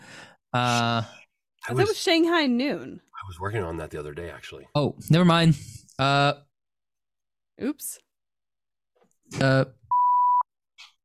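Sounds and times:
speech: 0:00.5 - 0:06.5, 0:07.6 - 0:08.0, 0:09.3 - 0:09.8
electronic beep: 0:09.9 - 0:10.4.

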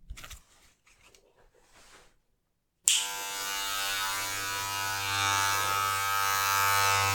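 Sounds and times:
electric razor with a fitted attachment cutting hair: 0:02.9 - 0:07.1.

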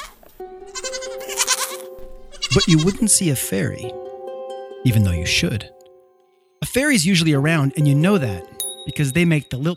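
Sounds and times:
goats bleating: 0:00.7 - 0:03.3
speech: 0:02.6 - 0:04.0, 0:04.8 - 0:05.8, 0:06.6 - 0:09.7.

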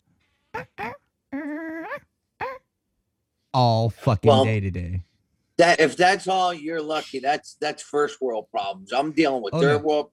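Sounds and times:
person mimicking dog barking: 0:00.6 - 0:02.7, 0:04.2 - 0:04.6, 0:09.6 - 0:09.8
speech: 0:03.6 - 0:10.1.

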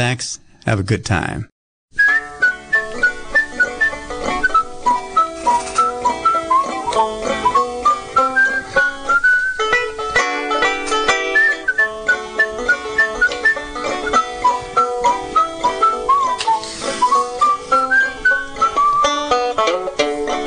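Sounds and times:
speech: 0:00.0 - 0:01.5
man whistling a bouncy lilting tune: 0:02.0 - 0:09.8, 0:11.2 - 0:19.4
steady instrumental backing music: 0:02.0 - 0:20.4.

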